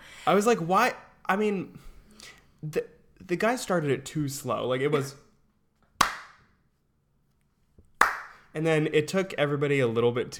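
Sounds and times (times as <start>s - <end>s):
speech: 0.2s - 5.2s, 8.6s - 10.3s
hands clapping slowly: 6.0s - 6.5s, 8.0s - 8.4s.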